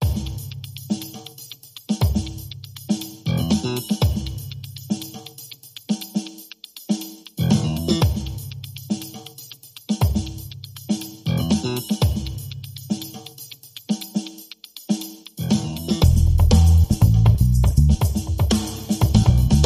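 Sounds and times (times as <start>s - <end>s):
percussion: 0.0s - 19.6s
bass: 3.3s - 3.8s, 7.4s - 8.2s, 11.3s - 11.7s, 15.4s - 18.2s, 19.0s - 19.6s.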